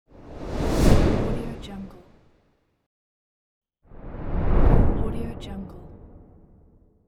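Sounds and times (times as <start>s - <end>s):
whoosh flyby: 0.1s - 1.9s, 3.9s - 5.2s.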